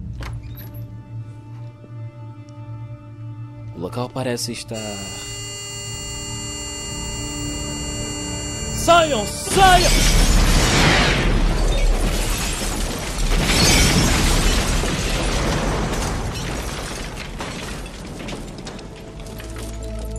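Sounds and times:
speech: 0:03.8 - 0:05.3, 0:08.9 - 0:10.3
faint siren-like wail: 0:04.8 - 0:09.8
loud roaring explosion hitting houses: 0:09.6 - 0:17.1.

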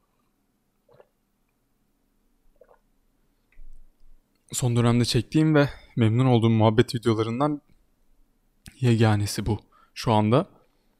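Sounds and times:
person sipping and gulping water: 0:00.0 - 0:01.2, 0:02.5 - 0:02.9
speech: 0:04.6 - 0:07.7, 0:08.8 - 0:10.6.

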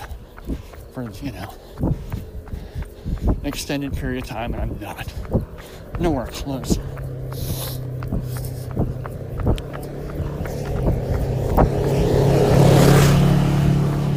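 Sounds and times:
speech: 0:00.5 - 0:02.1, 0:03.4 - 0:08.5
small four-wheeler dune buggy engine driving down a road: 0:06.1 - 0:14.1.

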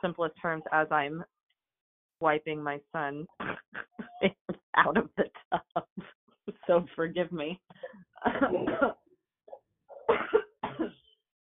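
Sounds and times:
speech: 0:00.0 - 0:01.4, 0:02.2 - 0:09.0
person coughing harshly: 0:08.3 - 0:09.0, 0:10.0 - 0:11.1.

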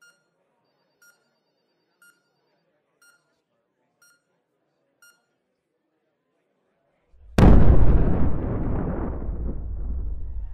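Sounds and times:
loud explosion: 0:07.2 - 0:10.5
brief low rumble: 0:07.4 - 0:10.5.

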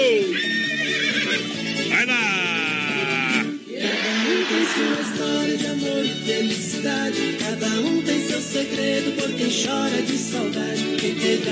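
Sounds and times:
horse neighing: 0:00.3 - 0:03.5
laughter: 0:01.3 - 0:06.0
speech: 0:07.1 - 0:11.5.

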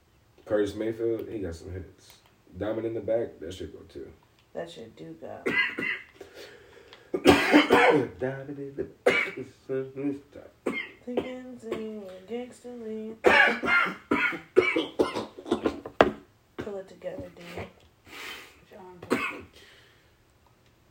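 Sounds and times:
speech: 0:00.5 - 0:06.0, 0:07.5 - 0:15.0, 0:16.7 - 0:17.8
harsh coughing and throat clearing: 0:05.4 - 0:06.2, 0:07.1 - 0:08.2, 0:09.0 - 0:09.5, 0:10.6 - 0:11.9, 0:13.2 - 0:16.0, 0:19.0 - 0:19.5
breathy exhale: 0:06.2 - 0:07.2, 0:19.5 - 0:20.1.

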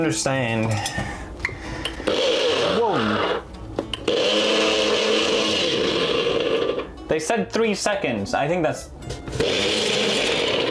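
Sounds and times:
speech: 0:00.0 - 0:01.2, 0:07.2 - 0:09.8
electric blender whirring: 0:02.0 - 0:03.4, 0:04.0 - 0:06.9, 0:09.4 - 0:10.7.

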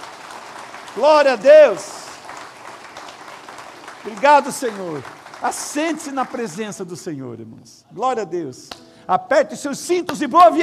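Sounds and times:
audience applauding: 0:00.0 - 0:06.9
speech: 0:01.0 - 0:01.9, 0:04.0 - 0:10.6.

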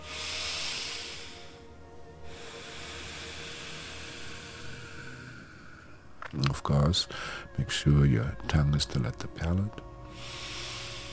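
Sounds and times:
long extended breath during a guided meditation: 0:00.0 - 0:06.1, 0:07.1 - 0:07.5, 0:10.0 - 0:11.1
speech: 0:06.6 - 0:10.4.

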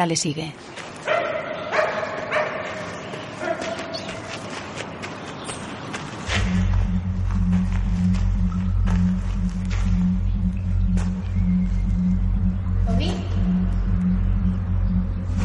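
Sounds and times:
speech: 0:00.0 - 0:01.2
dog barking while chasing a thrown tennis ball: 0:01.0 - 0:04.0
low steady rumble: 0:06.3 - 0:15.4.

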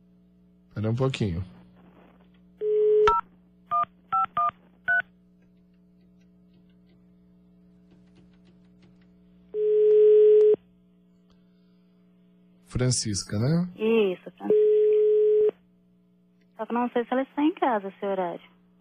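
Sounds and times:
speech: 0:00.8 - 0:01.6, 0:12.8 - 0:14.1, 0:16.7 - 0:18.5
long steady telephone tone: 0:02.6 - 0:05.2, 0:09.5 - 0:10.8, 0:14.4 - 0:15.7.

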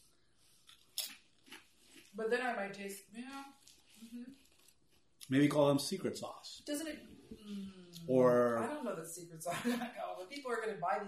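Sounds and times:
crunching on potato chips: 0:00.6 - 0:02.2, 0:03.4 - 0:05.3
speech: 0:02.2 - 0:04.5, 0:05.3 - 0:11.0.

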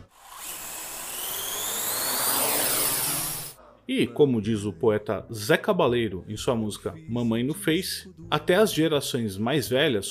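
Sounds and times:
delivery drone propellers buzzing: 0:01.2 - 0:03.6
speech: 0:03.9 - 0:10.1.

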